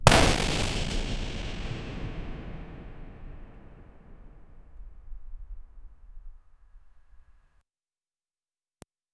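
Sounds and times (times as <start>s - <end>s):
echoing debris falling in a mine: 0.0s - 5.0s
dynamite blast in a mine: 0.0s - 6.2s.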